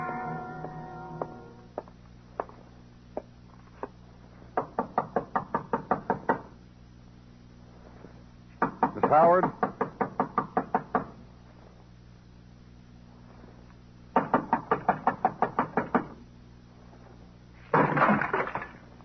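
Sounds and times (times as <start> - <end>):
steady low hum: 0.0 - 19.0
police knocking loudly and rapidly on a door: 4.6 - 6.5, 8.6 - 11.2, 14.2 - 16.2
speech: 9.1 - 9.6.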